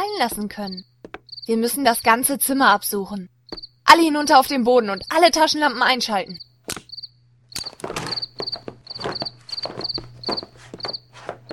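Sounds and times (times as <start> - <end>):
speech: 0.2 - 0.9, 1.5 - 6.5
cricket chirping in a room: 0.2 - 2.0, 3.5 - 3.8, 6.2 - 11.5
footsteps around a room: 0.3 - 1.3, 7.6 - 11.5
shuffling movements around a room: 7.6 - 11.5.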